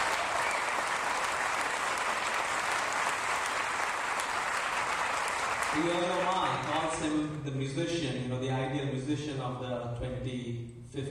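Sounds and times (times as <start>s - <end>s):
audience applauding at a music festival concert: 0.0s - 7.1s
speech: 5.8s - 11.0s.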